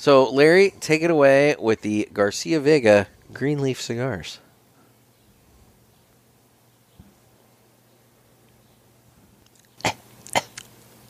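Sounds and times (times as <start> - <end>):
speech: 0.0 - 4.4
quiet room hum: 0.0 - 11.0
short sharp coughs close to the mic: 9.8 - 10.6.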